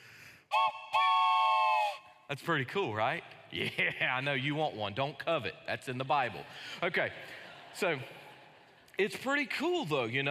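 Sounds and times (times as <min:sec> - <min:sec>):
wooden train whistle blowing: 0:00.5 - 0:02.3
speech: 0:02.3 - 0:08.2, 0:09.0 - 0:10.2
laughter: 0:03.6 - 0:04.2, 0:06.4 - 0:09.2.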